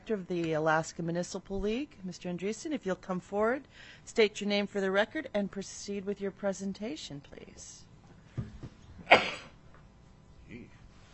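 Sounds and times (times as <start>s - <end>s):
speech: 0.1s - 8.5s
sneeze during a committee hearing: 9.0s - 9.6s.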